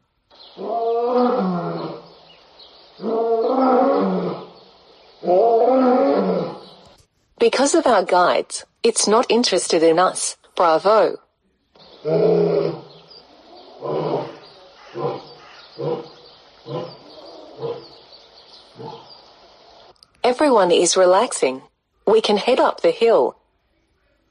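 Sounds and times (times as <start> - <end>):
faint birdsong: 0.0 - 24.3
speech: 0.6 - 1.6, 7.4 - 11.2, 12.0 - 12.4, 20.3 - 23.4
lion roaring: 0.6 - 2.1, 3.0 - 6.9, 11.8 - 18.1, 18.7 - 19.2.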